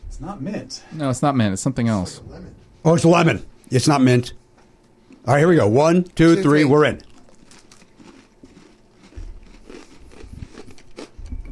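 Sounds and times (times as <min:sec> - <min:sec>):
speech: 0:00.2 - 0:04.4, 0:05.2 - 0:07.1
crunching bites of a lemon-scented cream-filled cookie: 0:06.9 - 0:11.4
low thumps of chewing: 0:07.0 - 0:11.4.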